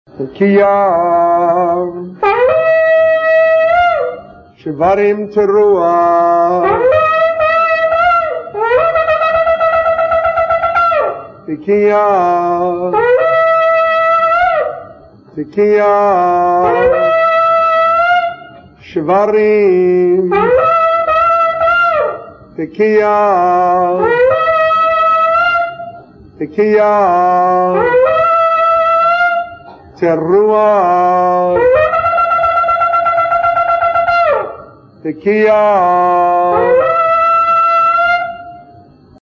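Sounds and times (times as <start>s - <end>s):
ram's horn shofar blowing: 0.2s - 39.2s.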